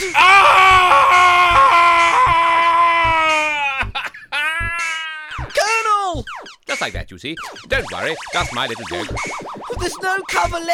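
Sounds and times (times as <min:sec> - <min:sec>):
agonized shriek drawn out into a wailing scream: 0:00.0 - 0:05.4
speech: 0:07.1 - 0:10.7.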